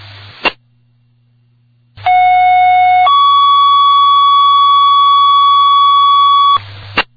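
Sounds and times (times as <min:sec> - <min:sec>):
faint low hum: 0:00.0 - 0:07.1
fire alarm alert tones striking second alarm: 0:02.0 - 0:06.6.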